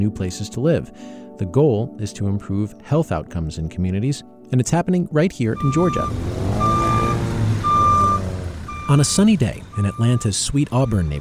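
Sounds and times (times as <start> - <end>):
speech: 0.0 - 6.4, 8.9 - 11.2
heavy truck hauling dirt at construction site with deep engine drone: 5.6 - 11.2
truck reversing beep: 5.6 - 11.2.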